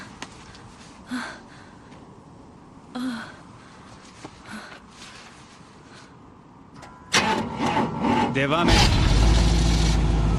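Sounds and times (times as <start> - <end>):
speech: 1.1 - 1.5, 8.4 - 9.0
car engine being started with the ignition key held: 6.8 - 10.3.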